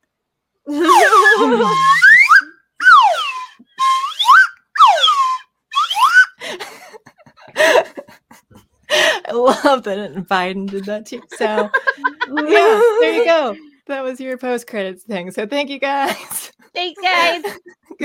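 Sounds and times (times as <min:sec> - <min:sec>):
laughter: 0:00.7 - 0:02.0, 0:06.4 - 0:08.8, 0:10.7 - 0:13.6, 0:17.0 - 0:18.0
slide whistle swooping pitch glides: 0:00.7 - 0:06.4
speech: 0:01.4 - 0:02.0, 0:09.7 - 0:18.0.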